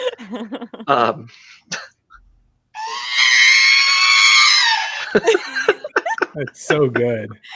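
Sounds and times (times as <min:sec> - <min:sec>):
laughter: 0:00.0 - 0:01.6, 0:04.9 - 0:07.5
speech: 0:00.3 - 0:01.9, 0:05.2 - 0:05.7, 0:06.4 - 0:07.5
robot droid wavering electronic scream: 0:02.8 - 0:05.2.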